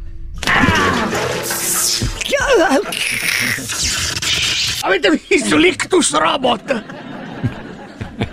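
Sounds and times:
bucketful of water being hurled and splashing: 0:00.4 - 0:04.8
crashing clattering noise: 0:00.4 - 0:04.8
brief warbling tone: 0:00.4 - 0:05.4
laughter: 0:00.5 - 0:04.1, 0:05.3 - 0:08.3
speech: 0:02.5 - 0:07.6.

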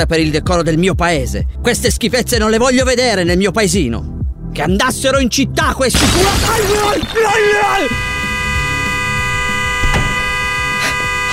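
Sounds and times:
speech: 0:00.0 - 0:08.1
car horn blaring in one long tone: 0:06.3 - 0:11.3.

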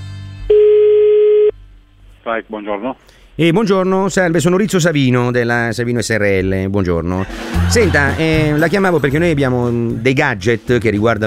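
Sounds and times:
telephone dial tone while placing a call: 0:00.5 - 0:01.5
speech: 0:02.3 - 0:11.2
laughter: 0:07.2 - 0:09.4.

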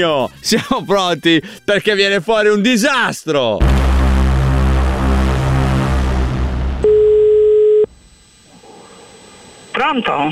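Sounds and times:
speech: 0:00.0 - 0:03.9, 0:09.8 - 0:10.3
low droning hum: 0:03.6 - 0:07.3, 0:07.9 - 0:09.8
telephone tone when placing a phone call: 0:06.8 - 0:07.9.

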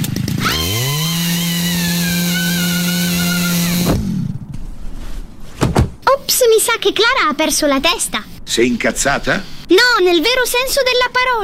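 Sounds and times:
chainsaw engine being pull-started and buzzing: 0:00.0 - 0:04.3
speech: 0:06.7 - 0:11.4.

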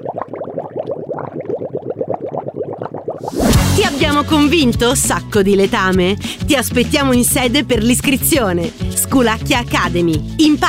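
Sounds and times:
bubbles blown through a straw into water: 0:00.0 - 0:04.2
speech: 0:03.8 - 0:10.6.

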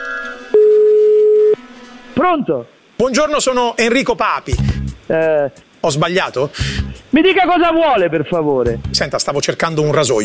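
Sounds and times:
telephone ringing tone as a prank call is placed: 0:00.0 - 0:01.6
speech: 0:02.2 - 0:10.2.

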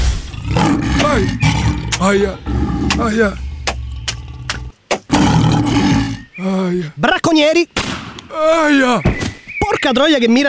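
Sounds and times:
voice imitating a lion in heat roaring: 0:00.4 - 0:06.2
speech: 0:01.2 - 0:01.4, 0:02.0 - 0:03.5, 0:06.4 - 0:07.8, 0:08.4 - 0:09.2, 0:09.8 - 0:10.4.

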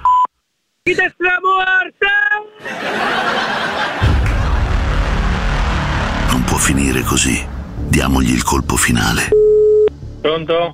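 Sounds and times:
speech: 0:00.9 - 0:03.6, 0:06.6 - 0:09.5, 0:10.2 - 0:10.7
chuckling laughter: 0:02.6 - 0:04.7
loud noise: 0:02.9 - 0:08.3
single short beep from an Italian mobile voicemail service: 0:09.3 - 0:10.0.

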